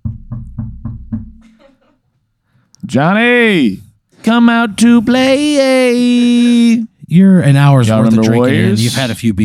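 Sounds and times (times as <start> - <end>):
firm knocking on a wooden door: 0.0 - 1.6
speech: 2.9 - 9.4.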